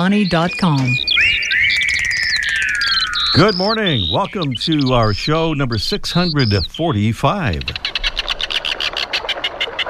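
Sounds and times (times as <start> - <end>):
speech: 0.0 - 1.4, 3.3 - 7.9
red-billed tropicbird shrill rasping calls: 0.0 - 6.8, 7.6 - 9.8.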